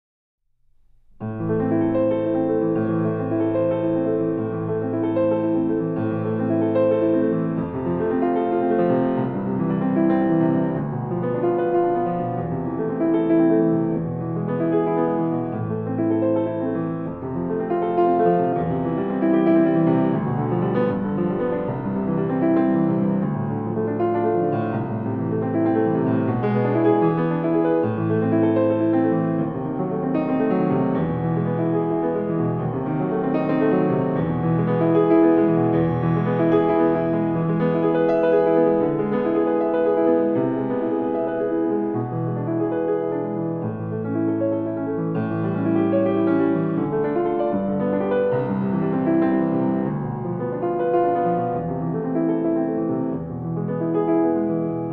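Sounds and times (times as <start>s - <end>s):
piano: 0.5s - 54.9s.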